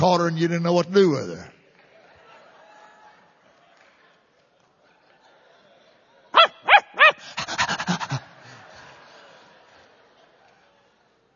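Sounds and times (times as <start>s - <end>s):
speech: 0.0s - 1.5s
person imitating a barking dog: 6.4s - 8.2s
panting huffs: 6.9s - 9.0s
laughter: 6.9s - 10.7s.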